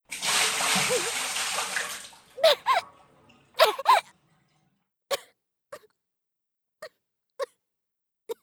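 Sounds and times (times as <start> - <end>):
water being splashed: 0.0 - 4.6.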